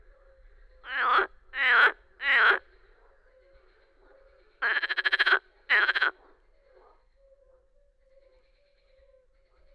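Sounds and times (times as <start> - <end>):
faint frog chatter: 0.0 - 7.2
marsh frog giving harsh warbling croaks: 0.8 - 2.7, 4.6 - 6.2.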